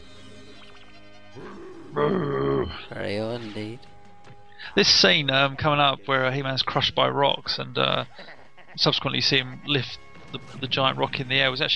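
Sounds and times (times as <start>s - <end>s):
cartoon character roaring: 1.4s - 2.9s
speech: 1.4s - 4.0s, 4.6s - 11.7s
laughter: 7.8s - 9.1s.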